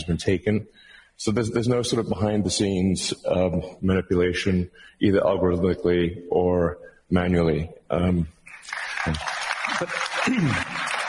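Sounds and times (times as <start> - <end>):
speech: 0.0 - 10.9
conference audience applause: 8.5 - 11.0.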